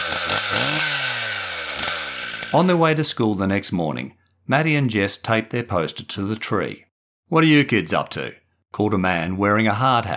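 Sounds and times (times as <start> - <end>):
loud chainsaw running and revving: 0.0 - 3.1
speech: 2.5 - 10.1.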